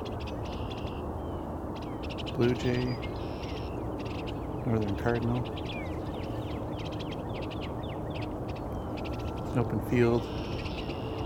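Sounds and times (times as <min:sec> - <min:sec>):
red-winged blackbird giving short buzzy high-pitched notes: 0:00.0 - 0:11.2
speech: 0:02.4 - 0:03.1, 0:04.7 - 0:05.8, 0:09.6 - 0:10.4.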